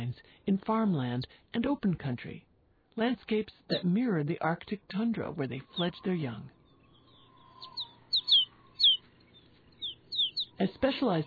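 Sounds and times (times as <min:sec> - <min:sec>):
speech: 0:00.1 - 0:06.6, 0:10.6 - 0:11.2
snow bunting calls: 0:06.6 - 0:11.2.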